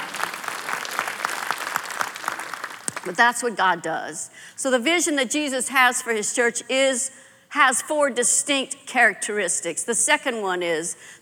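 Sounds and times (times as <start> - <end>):
audience clapping hands: 0.0 - 3.2
speech: 3.0 - 11.2.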